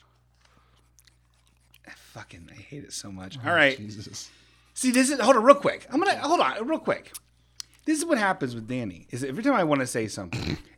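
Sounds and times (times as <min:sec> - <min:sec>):
gum chewing against the microphone: 0:00.0 - 0:02.2, 0:07.0 - 0:07.9
speech: 0:02.2 - 0:07.2, 0:07.9 - 0:10.7.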